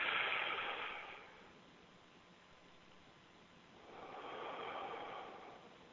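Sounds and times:
deep breath drawn in during a guided breathing exercise: 0.0 - 1.5, 3.8 - 5.9.

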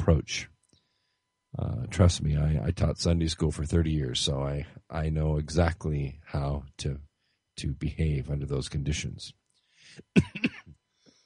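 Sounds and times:
speech: 0.0 - 0.5, 1.9 - 10.6
harsh coughing: 10.0 - 10.7.

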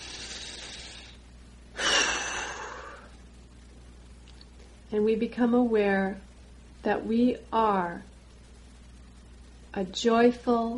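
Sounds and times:
fuller louder rush of exhaled air: 0.0 - 1.2, 1.8 - 3.1
long airy breath drawn in during a guided prayer meditation: 0.0 - 1.2, 1.8 - 3.1
speech: 4.9 - 8.1, 9.8 - 10.7.

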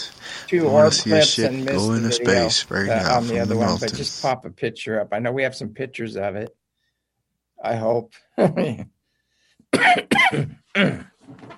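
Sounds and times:
speech: 0.5 - 6.6, 7.6 - 8.9, 9.7 - 11.5
person coughing in short harsh raspy bursts: 9.8 - 11.2.

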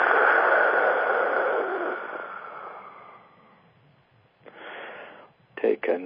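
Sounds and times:
forceful hissing dragon-breath exhale during a group breathing exercise: 0.0 - 3.6, 4.5 - 5.3.

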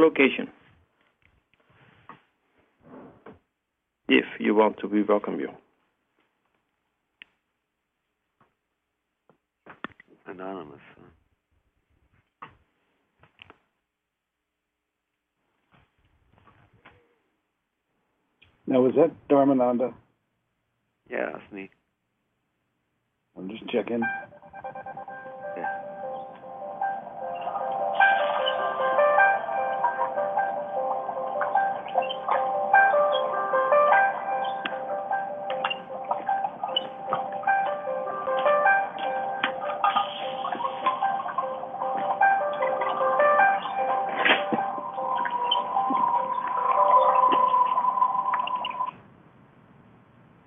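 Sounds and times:
speech: 0.0 - 0.6, 4.1 - 5.6, 10.3 - 10.9, 18.7 - 20.0, 21.1 - 21.8, 23.4 - 25.8
tinkling electronic phone reminder alert melody: 23.7 - 48.9.

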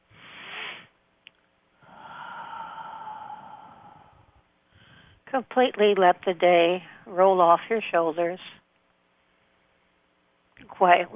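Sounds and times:
deep breath taken to relax during a guided relaxation session: 1.8 - 5.3
speech: 5.3 - 8.6, 10.8 - 11.1.

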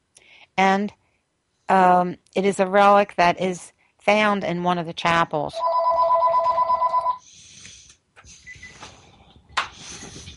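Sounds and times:
speech: 0.6 - 1.0, 1.7 - 5.8
telephone ringing with a bright electronic trill: 5.6 - 7.2.

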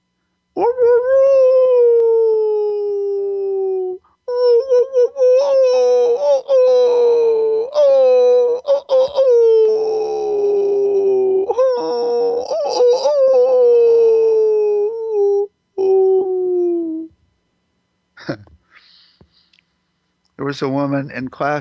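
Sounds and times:
human voice imitating a wolf's wailing howl: 0.6 - 17.2
speech: 20.5 - 21.6.

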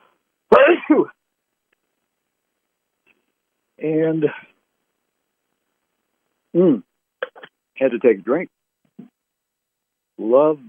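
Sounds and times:
person sneezing loudly: 0.5 - 1.1, 7.2 - 7.5
speech: 3.8 - 4.5, 6.6 - 6.9, 7.8 - 8.6, 10.2 - 10.6.

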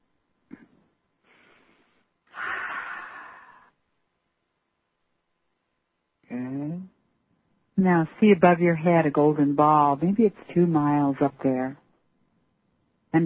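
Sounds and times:
deep loud breath during a guided meditation: 0.6 - 3.8
speech: 7.8 - 11.8.

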